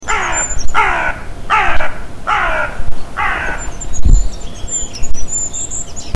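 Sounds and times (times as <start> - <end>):
carrion crow calling: 0.0 - 3.9.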